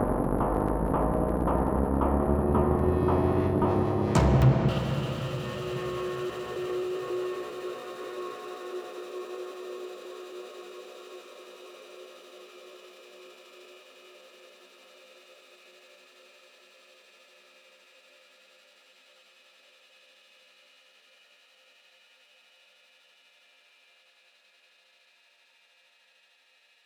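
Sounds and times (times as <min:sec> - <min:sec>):
uplift synth sweep: 0:00.1 - 0:11.4.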